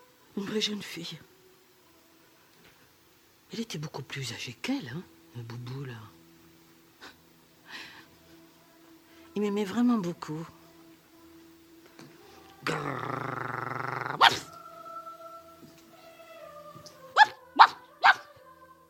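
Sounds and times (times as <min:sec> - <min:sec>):
speech: 0:00.4 - 0:01.3, 0:03.5 - 0:06.2, 0:09.4 - 0:10.6, 0:12.7 - 0:13.3
person imitating a dog barking and growling: 0:12.6 - 0:14.6, 0:17.2 - 0:18.3.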